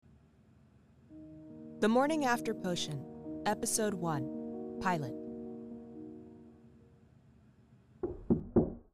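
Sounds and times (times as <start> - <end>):
sustained musical tone: 1.1 - 7.0
speech: 1.2 - 5.2
knocks on a wooden front door: 8.0 - 8.9.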